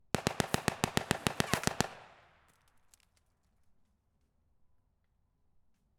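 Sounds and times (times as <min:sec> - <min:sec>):
M3 Grease Gun .45 calibre submachine gun firing a burst: 0:00.2 - 0:02.2.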